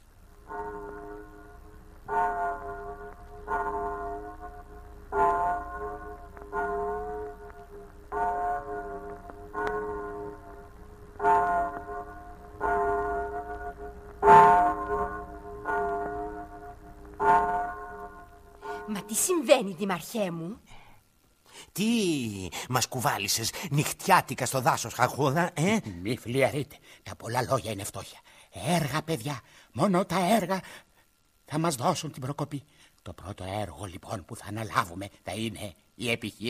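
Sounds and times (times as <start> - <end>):
town square clock bell striking: 0.5 - 19.4
speech: 19.2 - 20.7, 21.8 - 30.9, 31.5 - 36.4.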